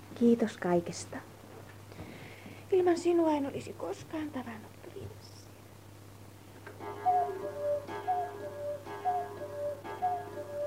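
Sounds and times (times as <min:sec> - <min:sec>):
faint low hum: 0:00.0 - 0:10.6
speech: 0:00.2 - 0:01.3, 0:02.7 - 0:04.8
clock striking ten with resonant chimes: 0:06.8 - 0:10.6.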